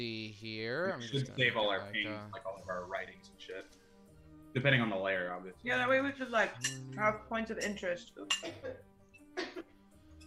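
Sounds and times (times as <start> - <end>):
speech: 0.0 - 3.8, 4.5 - 9.7
cough or sneeze: 8.3 - 8.8.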